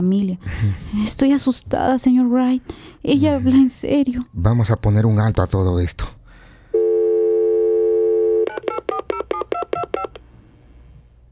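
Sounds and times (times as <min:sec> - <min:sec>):
speech: 0:00.0 - 0:06.2
telephone dial tone: 0:06.8 - 0:10.2.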